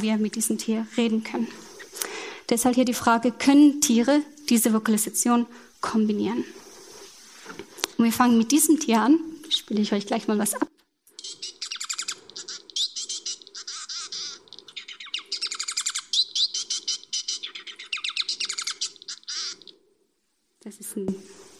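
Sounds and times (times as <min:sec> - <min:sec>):
speech: 0:00.0 - 0:06.6, 0:08.0 - 0:10.7
Bengalese finch song: 0:11.1 - 0:19.8.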